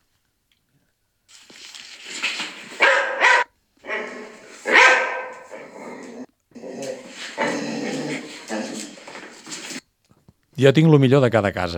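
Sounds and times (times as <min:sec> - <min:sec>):
border collie dalmatian mix dog barking and whining: 0:02.7 - 0:09.8
speech: 0:10.6 - 0:11.7.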